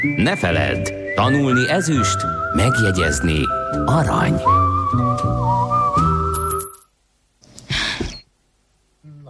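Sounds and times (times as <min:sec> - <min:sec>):
speech: 0:00.0 - 0:05.8
whistled melodic tune: 0:00.0 - 0:06.8
loud heavy breath and sharp breathy exhale: 0:07.6 - 0:08.2.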